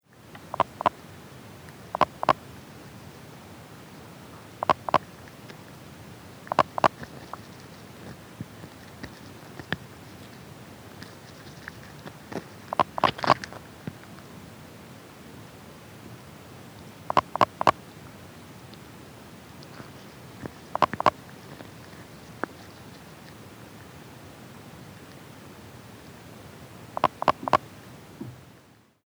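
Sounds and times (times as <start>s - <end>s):
Pelobates fuscus calling: 0.3s - 14.3s, 17.0s - 24.1s, 25.8s - 27.8s.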